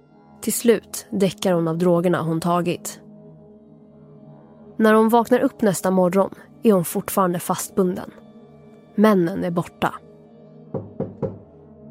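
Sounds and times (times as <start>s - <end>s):
speech: 0.4s - 3.0s, 4.8s - 8.2s, 9.0s - 10.0s
firm knocking on a door: 10.7s - 11.5s.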